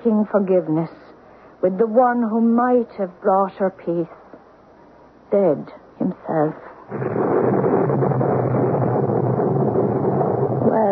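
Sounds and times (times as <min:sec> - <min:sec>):
speech: 0:00.0 - 0:01.0, 0:01.6 - 0:04.2, 0:05.3 - 0:07.3
thunder of an approaching storm rumbling: 0:06.9 - 0:10.8.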